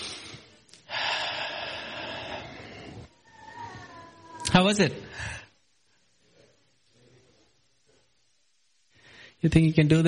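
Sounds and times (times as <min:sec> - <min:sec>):
person inhaling deeply during a guided breathing exercise: 0:00.0 - 0:03.1
quiet breathing: 0:00.0 - 0:04.1, 0:05.0 - 0:06.5, 0:08.9 - 0:09.4
speech: 0:04.6 - 0:05.4, 0:09.4 - 0:10.0.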